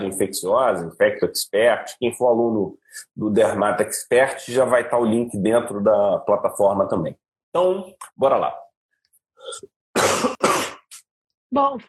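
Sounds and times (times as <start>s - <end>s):
speech: 0.1s - 8.6s, 9.4s - 10.4s, 11.5s - 11.8s
short throaty sound: 9.4s - 11.0s
person coughing harshly: 10.0s - 10.9s.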